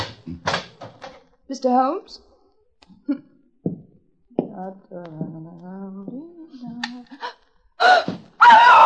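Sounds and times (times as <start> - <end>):
speech: 1.5 - 2.3, 3.1 - 3.3, 4.6 - 8.8
woman screaming shrilly: 7.8 - 8.8.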